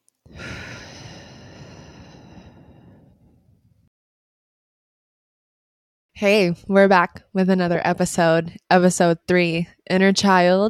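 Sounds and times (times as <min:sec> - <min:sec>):
slow deep breath in and out: 0:00.3 - 0:03.9
speech: 0:06.2 - 0:10.6.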